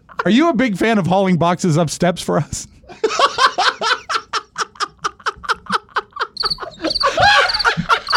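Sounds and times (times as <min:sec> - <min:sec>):
speech: 0:00.2 - 0:04.0
loud rough laughter-like burst: 0:03.0 - 0:08.1
crickets chirping: 0:06.4 - 0:08.1.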